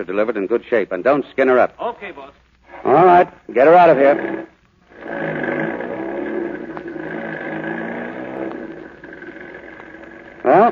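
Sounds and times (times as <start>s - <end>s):
speech: 0.0s - 5.4s, 10.5s - 10.7s
heavy truck engine pulling a trailer away from a ranch: 4.9s - 10.7s.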